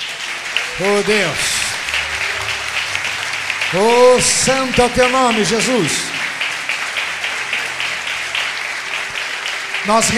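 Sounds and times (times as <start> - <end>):
crowd clapping: 0.0 - 10.1
speech: 0.8 - 1.6, 3.7 - 6.1, 9.8 - 10.1.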